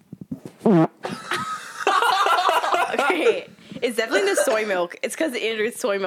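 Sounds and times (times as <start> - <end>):
short buzzy fart into the microphone: 0.1 - 1.1
laughter: 1.0 - 4.8
breathy noisy rustling: 3.5 - 4.7
speech: 3.9 - 6.0.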